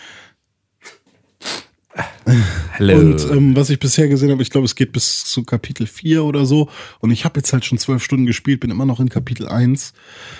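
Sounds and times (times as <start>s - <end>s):
sneeze with sharp intake breaths and snorts: 0.8s - 2.1s
speech: 2.3s - 10.3s.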